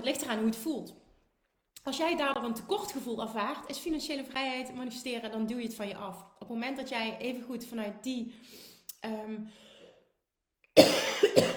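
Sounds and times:
speech: 0.0s - 1.0s, 1.8s - 9.7s, 10.8s - 11.5s
tickly cough: 10.8s - 11.5s.

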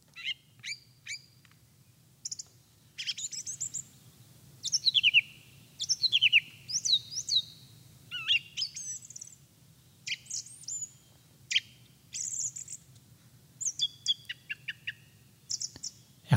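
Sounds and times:
song thrush singing: 0.1s - 13.0s, 13.6s - 16.3s.

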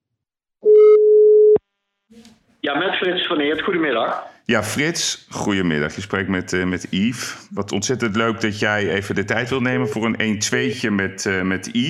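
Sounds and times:
telephone ringing tone while placing a call: 0.6s - 1.6s
speech: 2.6s - 11.8s.

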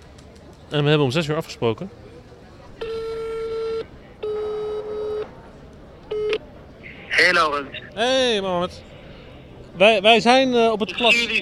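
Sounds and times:
faint noise: 0.0s - 11.3s
speech: 0.7s - 2.0s, 7.3s - 8.9s, 9.8s - 11.3s
electronic ringing tone of an outgoing phone call: 2.8s - 5.3s.

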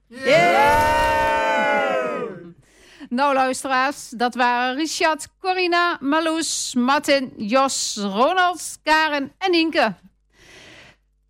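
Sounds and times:
studio guests cheering and shouting together: 0.1s - 2.5s
speech: 3.2s - 10.1s.

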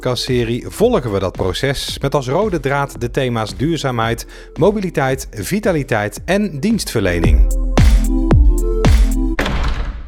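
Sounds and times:
speech: 0.0s - 7.6s
heavy door shutting with deep booming thuds: 8.9s - 10.0s.

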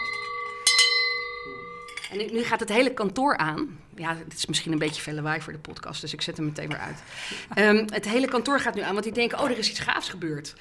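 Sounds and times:
large office celebration bell ringing: 0.0s - 2.2s
speech: 2.1s - 10.5s.

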